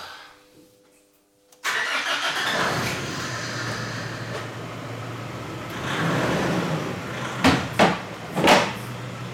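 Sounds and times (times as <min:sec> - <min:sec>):
car engine in a garage starting and idling: 0:01.6 - 0:09.3
sharp clunks: 0:07.4 - 0:08.8.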